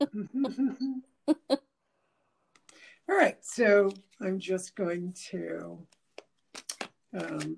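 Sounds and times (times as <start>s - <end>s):
speech: 0.0s - 1.6s, 3.1s - 6.0s, 7.1s - 7.5s
deck of tarot cards being shuffled: 5.9s - 7.5s.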